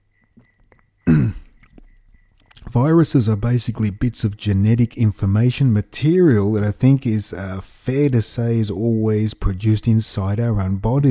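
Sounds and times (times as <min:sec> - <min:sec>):
throat clearing from a dry throat: 0:01.0 - 0:01.8
speech: 0:02.8 - 0:11.0.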